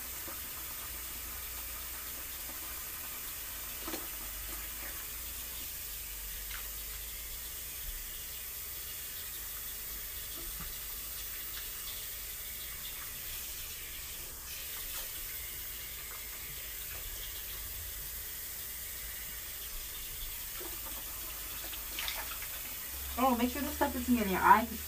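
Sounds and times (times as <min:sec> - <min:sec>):
sink faucet running water: 0:00.0 - 0:24.8
water splashing as hair is rinsed: 0:20.6 - 0:24.8
speech: 0:23.4 - 0:24.8.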